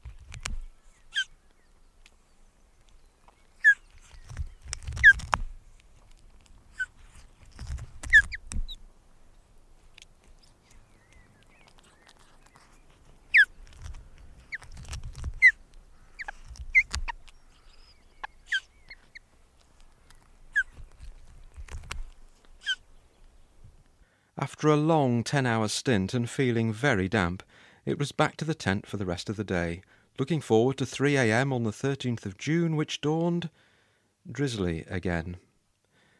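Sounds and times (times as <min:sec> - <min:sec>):
tiny bird chicks begging in a nest at a drizzly dawn: 0:03.6 - 0:05.4, 0:06.7 - 0:08.8, 0:10.4 - 0:13.6, 0:14.3 - 0:19.3, 0:20.5 - 0:20.8
speech: 0:24.4 - 0:33.7, 0:34.3 - 0:35.4.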